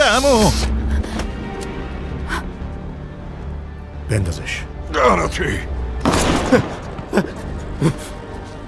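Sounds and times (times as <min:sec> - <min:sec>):
speech: 0:00.2 - 0:00.7, 0:04.1 - 0:08.2
sharp gunshots fired at a person during a robbery: 0:06.0 - 0:06.8.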